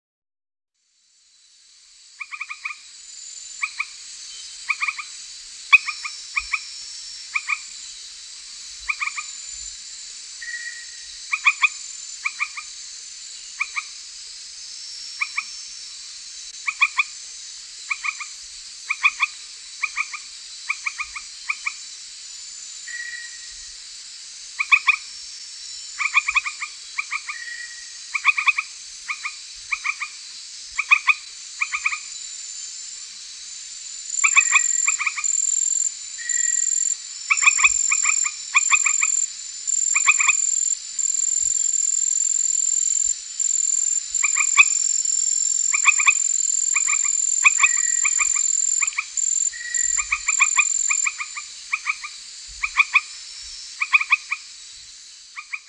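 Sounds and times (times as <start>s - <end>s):
Hyla granosa calling: 2.2s - 2.8s, 3.6s - 4.0s, 4.6s - 6.7s, 7.3s - 7.7s, 8.8s - 9.5s, 10.4s - 12.7s, 13.5s - 14.0s, 16.6s - 17.2s, 17.9s - 21.8s, 24.6s - 25.1s, 26.0s - 30.2s, 30.8s - 32.2s, 33.9s - 53.2s, 53.8s - 54.5s, 55.4s - 55.6s.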